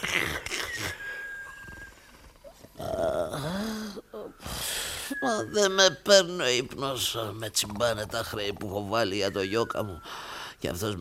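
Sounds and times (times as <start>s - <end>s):
whistling gliding tone: 0.7s - 2.2s, 4.3s - 5.8s, 9.1s - 10.2s
person imitating snoring: 2.8s - 4.8s
speech: 5.2s - 10.9s.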